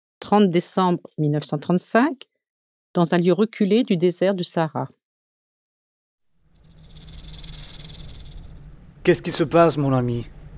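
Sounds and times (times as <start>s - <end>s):
speech: 0.3s - 2.3s, 2.9s - 5.0s, 9.0s - 10.4s
snake hissing: 6.5s - 8.8s.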